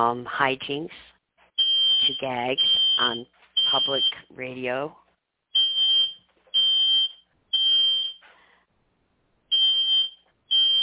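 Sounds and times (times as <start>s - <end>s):
speech: 0.0s - 1.1s, 2.0s - 5.0s
shrill alarm beeping indoors: 1.6s - 4.3s, 5.6s - 8.2s, 9.5s - 10.8s.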